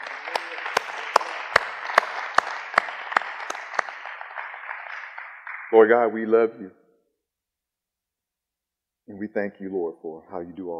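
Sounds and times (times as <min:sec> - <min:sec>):
audience group claps in praise: 0:00.0 - 0:06.5
scattered applause: 0:00.0 - 0:06.5
speech: 0:05.7 - 0:06.8, 0:09.2 - 0:10.7.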